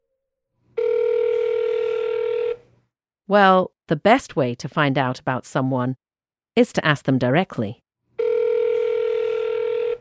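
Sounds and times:
electronic telephone ringback tone: 0.8 - 2.6, 8.2 - 10.0
speech: 3.3 - 6.0, 6.6 - 7.8.

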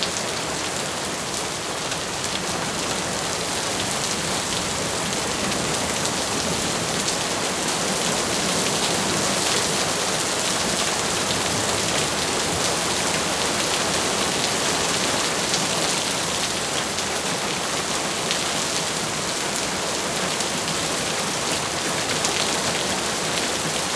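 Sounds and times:
steady jungle rain: 0.0 - 23.9.

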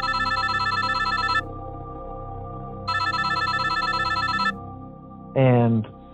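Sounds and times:
telephone bell ringing: 0.0 - 1.4, 2.9 - 4.6.

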